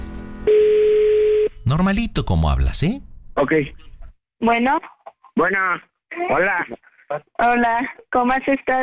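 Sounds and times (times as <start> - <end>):
buzzing telephone line tone as a number is dialed: 0.5 - 1.5
speech: 1.7 - 8.8.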